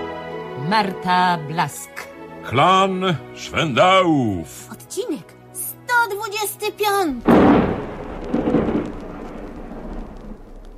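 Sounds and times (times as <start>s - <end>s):
speech: 0.7s - 5.3s, 6.1s - 7.6s
low rolling thunder from a December thunderstorm: 7.2s - 10.7s
hiss of rain from a December thunderstorm: 7.3s - 10.7s.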